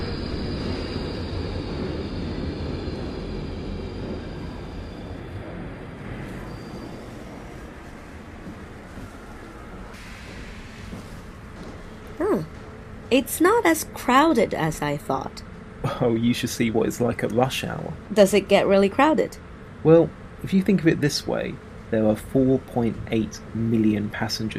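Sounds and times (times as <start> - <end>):
underground metro train high squeal: 0.0 - 11.2
underground metro train in London arriving, wheels and carriages rumbling: 0.0 - 24.5
speech: 13.1 - 24.5.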